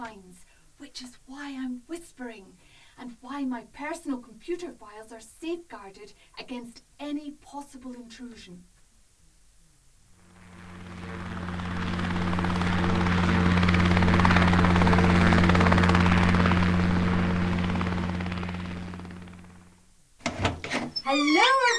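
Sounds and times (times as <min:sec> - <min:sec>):
speech: 0:01.0 - 0:08.7, 0:21.1 - 0:21.7
helicopter flying past with rotor thudding: 0:10.2 - 0:19.8.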